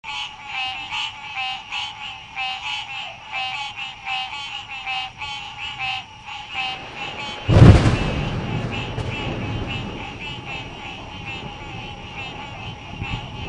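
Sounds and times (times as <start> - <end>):
frog giving pulsed buzzy croaks: 0.1 - 13.4.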